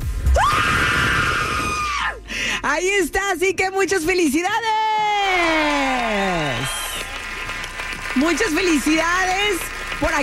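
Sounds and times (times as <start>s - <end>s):
person screaming in a haunted-house scream contest: 0.4s - 2.2s
speech: 2.6s - 6.8s, 8.2s - 10.2s.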